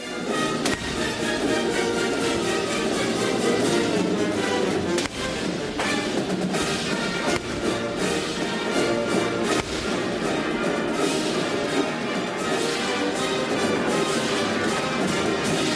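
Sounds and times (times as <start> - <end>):
loud full band performance with dense brass and percussion: 0.0 - 15.7
howitzer cannon blasts outdoors: 0.3 - 11.7.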